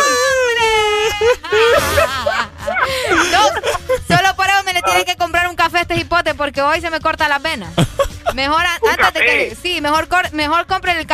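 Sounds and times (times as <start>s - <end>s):
laughter: 0.4s - 5.1s, 7.7s - 9.5s
person whimpering and crying: 1.4s - 5.1s, 8.8s - 9.6s
speech: 5.0s - 11.1s.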